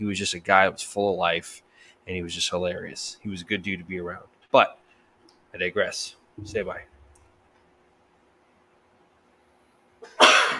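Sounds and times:
speech: 0:00.0 - 0:04.8, 0:05.5 - 0:06.9
sneeze from allergies: 0:10.0 - 0:10.5.

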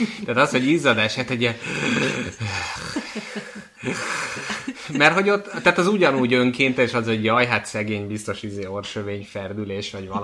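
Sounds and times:
speech: 0:00.0 - 0:10.2
voice imitating a raspy wheezing breath: 0:01.6 - 0:04.9
laughter: 0:01.7 - 0:06.6.

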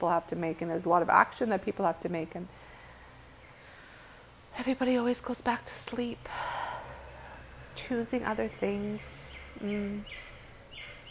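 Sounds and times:
speech: 0:00.0 - 0:02.7, 0:04.6 - 0:06.6, 0:07.8 - 0:11.0
bird chirping faintly: 0:08.9 - 0:11.0.

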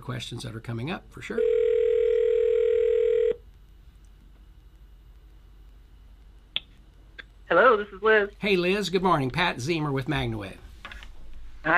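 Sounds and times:
speech: 0:00.1 - 0:01.6, 0:07.5 - 0:10.6
telephone dial tone while dialing out: 0:01.4 - 0:03.4.

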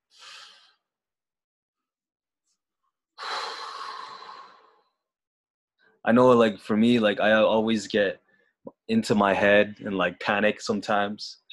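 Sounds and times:
deep breath: 0:00.0 - 0:00.9, 0:03.2 - 0:05.0
speech: 0:06.0 - 0:11.5.

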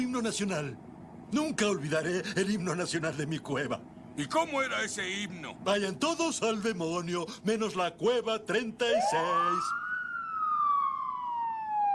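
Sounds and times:
speech: 0:00.0 - 0:09.8
police siren wailing: 0:08.8 - 0:11.9.

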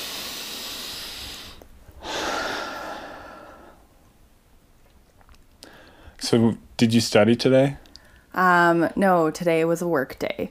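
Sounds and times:
deep breathing during a relaxation exercise: 0:00.0 - 0:04.1, 0:05.6 - 0:06.2
speech: 0:06.3 - 0:07.8, 0:08.4 - 0:10.4.

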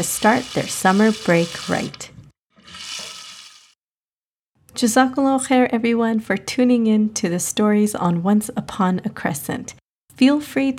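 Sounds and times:
speech: 0:00.0 - 0:02.1, 0:04.8 - 0:10.7
bathroom tap water running for kids washing hands: 0:00.0 - 0:03.8.

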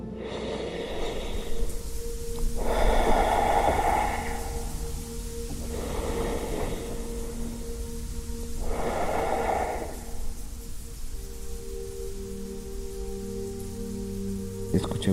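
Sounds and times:
slow deep breathing in and out: 0:00.0 - 0:12.1
soft sustained tonal backdrop: 0:00.0 - 0:15.1.

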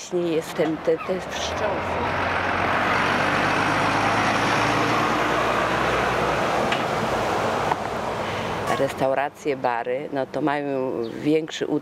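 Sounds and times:
heavy trucks passing on a street with traffic lights: 0:00.0 - 0:09.9
speech: 0:00.1 - 0:02.6, 0:08.8 - 0:11.8.

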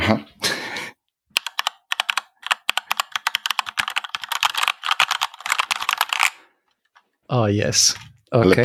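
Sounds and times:
speech: 0:00.1 - 0:00.4, 0:07.3 - 0:08.6
typing on a mechanical keyboard with brown switches: 0:01.4 - 0:06.4.

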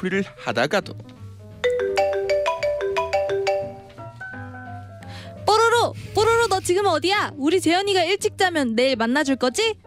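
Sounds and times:
speech: 0:00.0 - 0:01.2, 0:06.6 - 0:09.8
bright electronic phone ringtone for an incoming call: 0:01.6 - 0:04.9.

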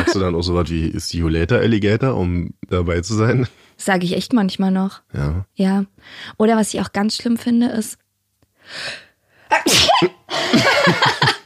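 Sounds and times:
laughter: 0:00.0 - 0:00.4, 0:10.4 - 0:11.4
speech: 0:00.1 - 0:08.0, 0:08.7 - 0:11.3
person giving a loud exaggerated sneeze: 0:09.5 - 0:10.6.

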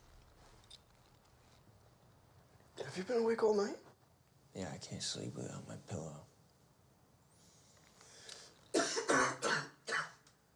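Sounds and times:
speech: 0:03.0 - 0:03.9, 0:04.6 - 0:06.3
harsh raspy coughs and throat-clearing bursts: 0:08.7 - 0:10.2.

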